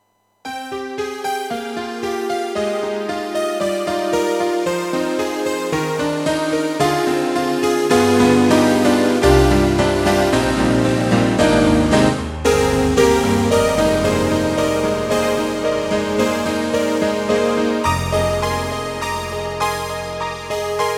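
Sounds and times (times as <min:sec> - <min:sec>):
synth pad piano sound from a synthesizer module: 0:00.4 - 0:20.9.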